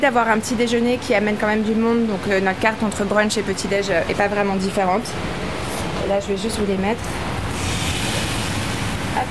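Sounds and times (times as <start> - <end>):
speech: 0.0 - 7.3
potatoes frying in a pan in a small modern restaurant kitchen: 7.5 - 9.2.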